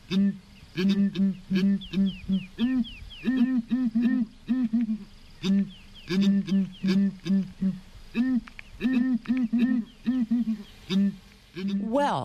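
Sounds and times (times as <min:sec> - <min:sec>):
southern ground hornbills hooting: 0:00.0 - 0:11.9
speech: 0:00.1 - 0:12.2.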